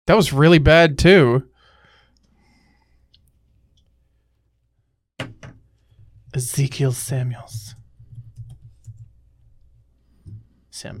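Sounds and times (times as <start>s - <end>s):
speech: 0.1s - 1.5s, 6.4s - 7.8s, 10.8s - 10.9s
typing on a computer keyboard: 7.5s - 9.2s.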